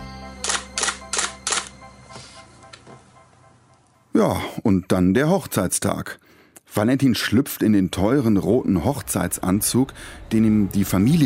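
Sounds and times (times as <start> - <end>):
camera shutter clicks taking photos: 0.4 - 1.8
speech: 4.2 - 11.2.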